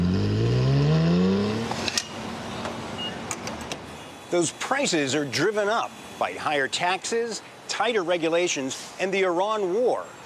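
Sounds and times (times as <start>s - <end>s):
sports car engine revving: 0.0s - 1.9s
speech: 4.3s - 10.2s.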